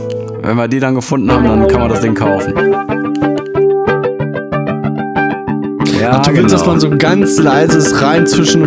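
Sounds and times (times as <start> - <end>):
speech: 0.4 - 3.0, 6.0 - 8.6
electric guitar through jet flanger pedal playing a riff: 2.4 - 7.4.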